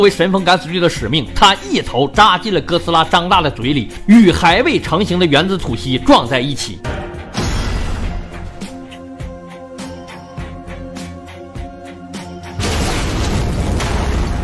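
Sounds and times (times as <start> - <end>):
speech: 0.0 - 7.0
cinematic explosion blasts: 12.6 - 14.4.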